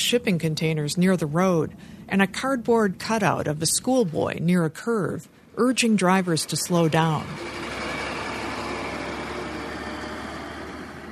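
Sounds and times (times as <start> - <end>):
speech: 0.1 - 7.6
heavy truck rumbling along a road: 6.2 - 11.1.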